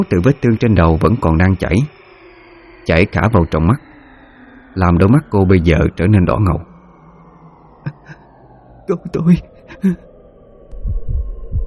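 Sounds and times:
speech: 0:00.0 - 0:02.0, 0:02.8 - 0:03.9, 0:04.8 - 0:06.7, 0:08.9 - 0:10.1
faint hum: 0:00.0 - 0:11.6
pounding heartbeat sound effect: 0:10.7 - 0:11.6.

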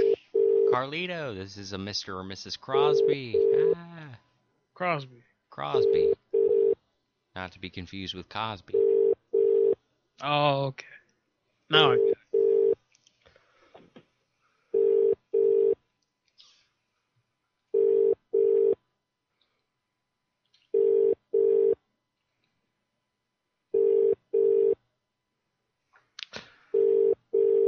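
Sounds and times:
telephone ringback tone on a prank phone call: 0:00.0 - 0:00.8, 0:05.8 - 0:06.8, 0:08.8 - 0:09.8, 0:11.9 - 0:12.8, 0:14.7 - 0:15.8, 0:17.8 - 0:18.8, 0:20.8 - 0:21.8, 0:23.7 - 0:24.8, 0:26.8 - 0:27.6
speech: 0:00.8 - 0:06.2, 0:07.4 - 0:08.8, 0:10.2 - 0:10.9, 0:11.7 - 0:12.2.

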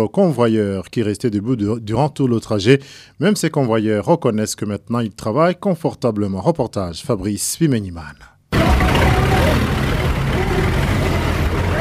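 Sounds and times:
speech: 0:00.0 - 0:08.9
idling bus engines in a public transport bus parking lot in Bujumbura: 0:08.6 - 0:11.7.

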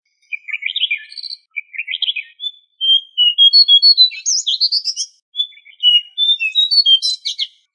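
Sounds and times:
bird song from Indonesia: 0:00.0 - 0:07.7.

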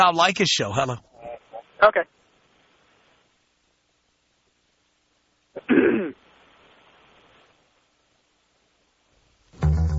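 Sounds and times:
speech: 0:00.0 - 0:01.1, 0:01.8 - 0:02.2, 0:05.6 - 0:06.2
faint steady hiss: 0:00.0 - 0:09.9
man clearing throat: 0:05.6 - 0:06.2.

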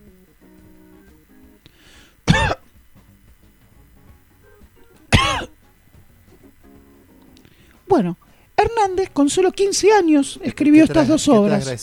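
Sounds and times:
person coughing: 0:02.3 - 0:02.7, 0:05.1 - 0:05.6
speech: 0:07.9 - 0:11.8.

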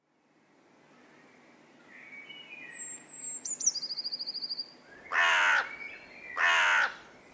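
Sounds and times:
faint high-pitched bird chirping: 0:01.0 - 0:06.6
rapid bird trill: 0:02.1 - 0:07.3
group of crows cawing in a field north of Munich: 0:05.1 - 0:05.8, 0:06.4 - 0:07.3.

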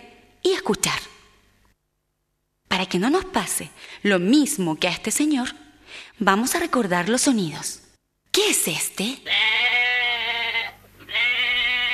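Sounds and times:
speech: 0:00.4 - 0:01.1, 0:02.7 - 0:09.6
sheep bleating: 0:09.2 - 0:11.9.

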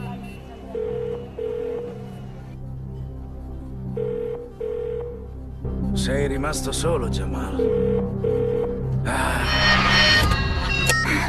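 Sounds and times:
telephone ringing with paired electronic ring tones: 0:00.0 - 0:02.1, 0:04.0 - 0:05.2, 0:07.6 - 0:08.8
music: 0:00.0 - 0:11.2
speech: 0:06.0 - 0:09.2.

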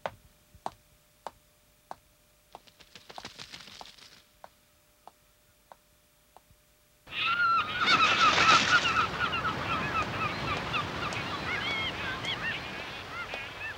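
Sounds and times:
many seagulls calling: 0:07.1 - 0:13.7.

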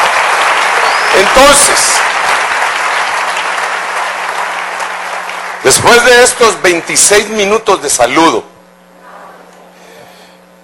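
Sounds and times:
congregation applauding at a church worship service: 0:00.0 - 0:06.8
speech: 0:01.4 - 0:02.4, 0:05.6 - 0:08.5.

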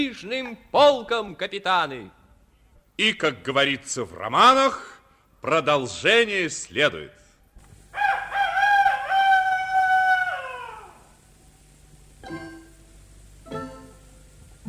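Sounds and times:
speech: 0:00.0 - 0:02.2, 0:03.0 - 0:07.2
rooster crowing: 0:07.9 - 0:11.2.

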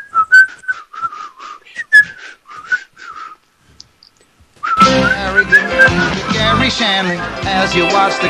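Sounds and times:
person whistling a tune on a live show: 0:00.0 - 0:03.4, 0:04.6 - 0:06.6
speech: 0:05.8 - 0:08.2.

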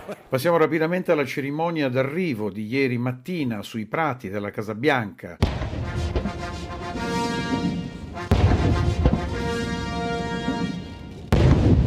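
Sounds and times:
speech: 0:00.1 - 0:05.6
cannon salute booms at an arrival ceremony on the White House lawn: 0:05.4 - 0:11.8
military march by brass band at an arrival ceremony: 0:05.5 - 0:11.8.

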